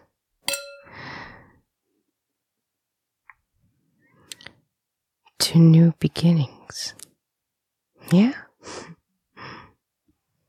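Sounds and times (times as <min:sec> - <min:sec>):
glasses clinking in a toast: 0:00.5 - 0:01.1
speech: 0:05.5 - 0:07.0, 0:08.1 - 0:09.0.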